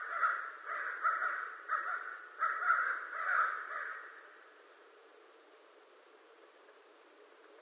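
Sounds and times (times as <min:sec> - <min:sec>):
American crow cawing: 0:00.0 - 0:04.4.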